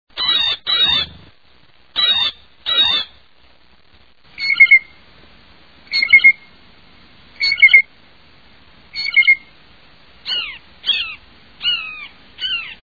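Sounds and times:
blue jay calling: 0.2 - 1.3, 2.0 - 3.2, 4.4 - 4.9, 5.9 - 6.5, 10.2 - 12.8.

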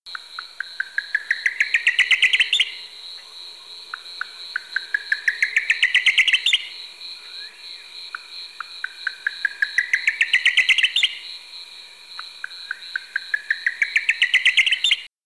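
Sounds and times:
Buff-collared nightjar calling: 0.1 - 11.4, 12.2 - 15.1.

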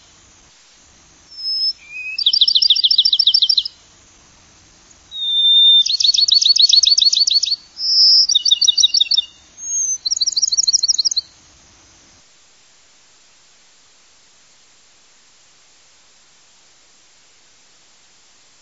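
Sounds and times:
Bachman's sparrow: 1.3 - 3.8, 4.9 - 11.3.

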